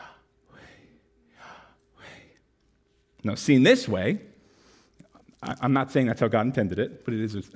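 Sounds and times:
slow deliberate breaths drawn in and pushed out: 0.0 - 2.5
speech: 3.2 - 4.3, 5.4 - 7.5.

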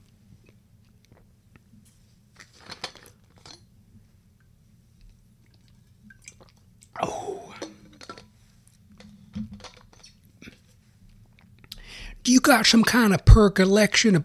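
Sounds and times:
person sipping water: 5.1 - 8.8, 10.0 - 12.2
wet mouth clicks: 11.3 - 11.9
speech: 12.3 - 14.2.

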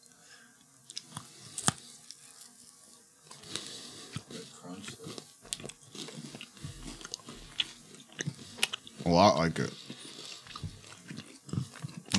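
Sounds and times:
wet chewing of a chewy caramel, crisped rice and chocolate candy bar: 3.3 - 12.1
speech: 9.1 - 9.8.

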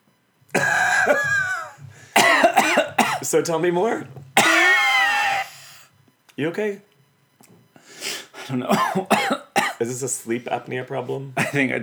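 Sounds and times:
harsh rasping coughing fit: 0.6 - 3.4, 4.4 - 5.9, 8.0 - 9.9, 11.4 - 11.8
speech: 3.3 - 4.2, 6.4 - 6.9, 8.5 - 11.8.

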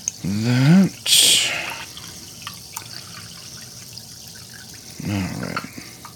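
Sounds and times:
sparkling water pouring into a measuring cup: 0.9 - 6.1.

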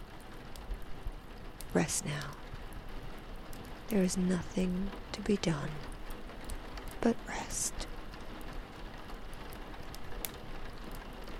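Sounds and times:
soft steady rain falling: 0.0 - 11.3
speech: 1.7 - 2.4, 3.9 - 5.9, 7.0 - 7.8.

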